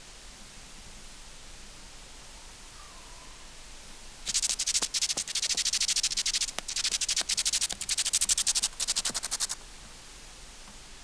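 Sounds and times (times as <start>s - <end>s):
Chorthippus grasshopper stridulating in dry hissing pulsed buzz: 4.3s - 9.6s.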